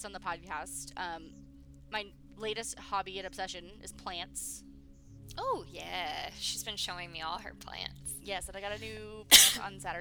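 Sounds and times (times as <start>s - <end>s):
speech: 0.0s - 4.7s, 5.3s - 9.9s
person cough-sneezing: 9.3s - 9.6s.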